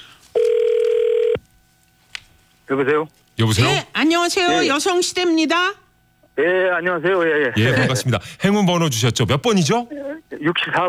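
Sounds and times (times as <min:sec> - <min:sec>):
telephone call connecting tone: 0:00.3 - 0:01.4
speech: 0:02.7 - 0:05.8, 0:06.4 - 0:10.8.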